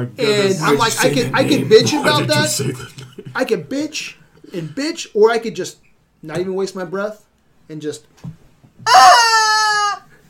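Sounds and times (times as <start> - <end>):
speech: 0.0 - 9.2
laughter: 0.6 - 3.5
rubber chicken toy squeezed giving shrill squawk: 8.9 - 10.2.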